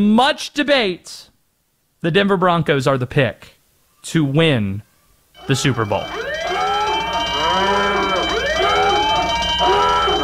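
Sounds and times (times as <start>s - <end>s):
speech: 0.0s - 1.3s, 2.0s - 6.4s
siren alarm wailing: 5.4s - 10.2s.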